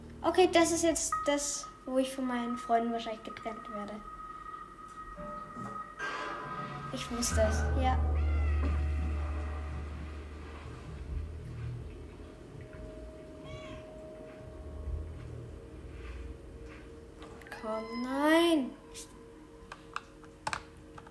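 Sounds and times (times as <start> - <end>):
low rumbling background: 0.0 - 17.8
speech: 0.2 - 4.1, 6.9 - 8.8, 17.7 - 19.2
cats meowing in a video game: 7.5 - 9.9, 13.4 - 13.9.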